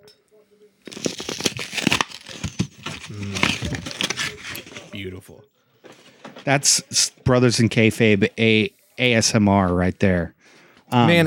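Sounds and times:
wrapping paper crinkling and tearing on Christmas morning: 0:00.8 - 0:05.0
speech: 0:05.0 - 0:05.6, 0:06.4 - 0:11.2.

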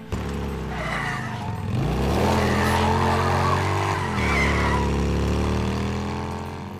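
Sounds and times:
video game motorcycle engine revving: 0:00.0 - 0:06.7.

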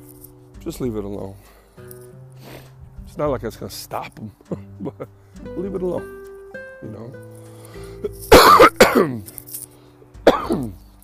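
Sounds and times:
speech: 0:00.6 - 0:01.6, 0:03.2 - 0:06.2, 0:06.8 - 0:07.4, 0:08.0 - 0:09.5, 0:10.5 - 0:10.8
dry harsh coughs: 0:08.3 - 0:09.3, 0:10.2 - 0:10.8.

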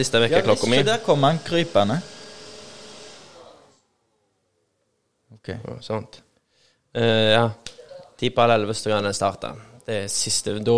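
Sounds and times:
speech: 0:00.0 - 0:02.2, 0:05.4 - 0:06.2, 0:06.9 - 0:10.7
robot vacuum cleaner running: 0:00.0 - 0:03.8.

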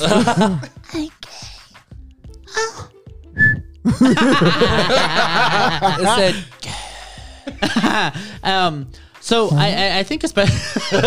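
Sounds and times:
laughter: 0:00.0 - 0:00.7, 0:03.9 - 0:06.5, 0:07.4 - 0:08.4, 0:10.4 - 0:11.0
speech: 0:00.0 - 0:01.1, 0:04.0 - 0:06.6, 0:07.6 - 0:11.0
person whistling a pop song tune: 0:03.4 - 0:03.7.

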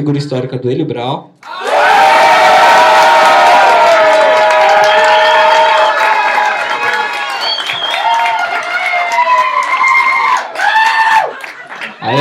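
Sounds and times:
speech: 0:00.0 - 0:02.0
live crowd shouting and cheering to vote by noise: 0:01.4 - 0:12.1.

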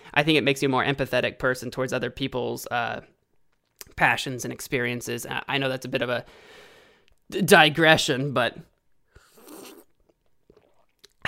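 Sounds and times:
speech: 0:00.2 - 0:03.2, 0:03.8 - 0:06.6, 0:07.3 - 0:08.7
person slurping coffee: 0:09.2 - 0:11.2.

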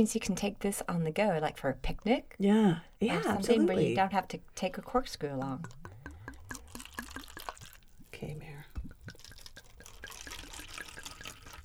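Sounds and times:
speech: 0:00.0 - 0:05.8
2017 Pinot Grigio white wine pouring into a glass: 0:05.6 - 0:08.1, 0:08.8 - 0:11.6.

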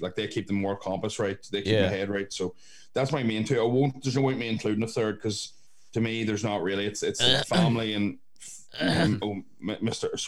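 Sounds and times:
speech: 0:00.0 - 0:10.2
short voiced throat noises: 0:01.7 - 0:02.0, 0:07.2 - 0:09.4
harsh cough: 0:07.2 - 0:07.8, 0:08.8 - 0:09.3.

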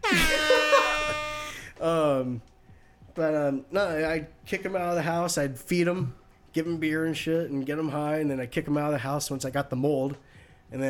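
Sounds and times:
air horn blasts: 0:00.0 - 0:01.8
speech: 0:01.8 - 0:02.5, 0:03.2 - 0:10.8.

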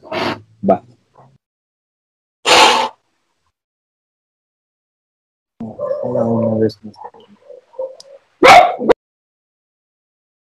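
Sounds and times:
speech: 0:00.6 - 0:00.9, 0:05.7 - 0:07.4
dog barking: 0:07.4 - 0:09.0.

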